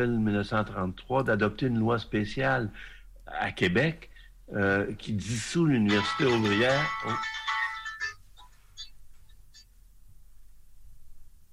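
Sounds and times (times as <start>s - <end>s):
speech: 0.0s - 7.4s
mobile phone ringing with a melodic electronic tone: 5.9s - 8.9s.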